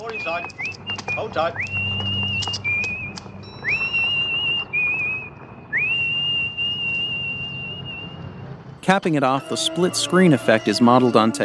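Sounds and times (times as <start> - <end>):
speech: 0.2 - 1.8, 8.9 - 11.4
woman whistling a slow eerie film tune: 0.6 - 8.2.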